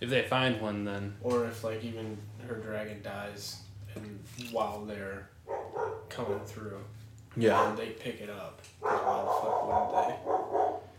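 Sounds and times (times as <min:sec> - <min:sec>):
speech: 0:00.0 - 0:10.9
dogs barking and yipping: 0:05.4 - 0:06.6, 0:07.4 - 0:08.0, 0:08.8 - 0:10.9.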